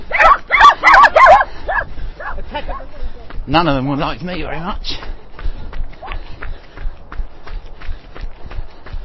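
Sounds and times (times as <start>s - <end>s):
dog barking with dog walkers: 0.1s - 2.9s
speech: 3.5s - 5.1s.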